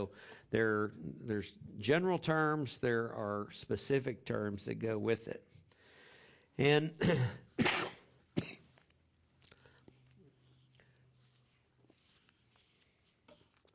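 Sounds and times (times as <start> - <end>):
speech: 0.0 - 5.6, 6.6 - 7.8
person with a lingering cough coughing: 7.0 - 8.8.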